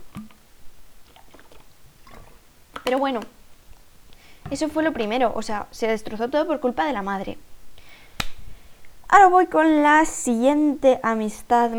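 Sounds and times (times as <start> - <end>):
soft swallowing of water: 0.0 - 5.5, 7.4 - 9.1
wet mouth clicks while sipping water: 0.0 - 10.1
speech: 2.9 - 3.4, 4.5 - 7.5, 9.1 - 11.7.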